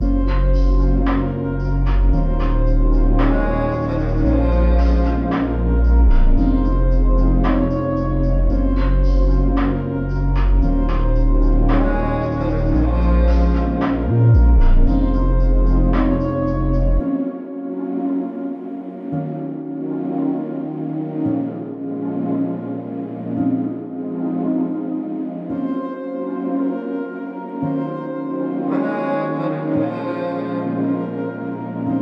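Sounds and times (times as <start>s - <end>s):
vague melody: 0.0s - 31.9s.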